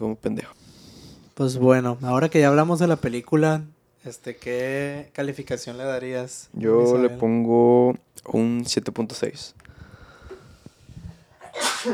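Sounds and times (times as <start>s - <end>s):
speech: 0.0s - 0.6s, 1.4s - 9.7s
sneeze: 11.4s - 11.9s.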